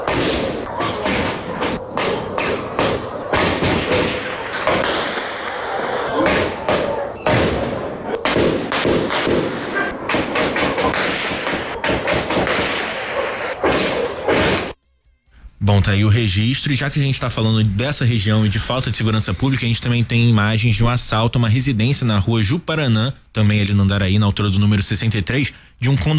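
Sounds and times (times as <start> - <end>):
gunshots from a shootout: 0.0 - 14.8
speech: 15.8 - 26.1.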